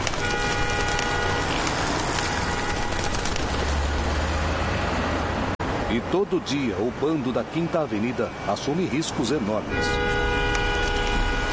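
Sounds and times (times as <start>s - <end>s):
car horn tooting: 0.0s - 3.0s, 9.6s - 11.5s
dense roar of Fifth Avenue city street traffic: 0.0s - 11.5s
speech: 6.0s - 10.3s.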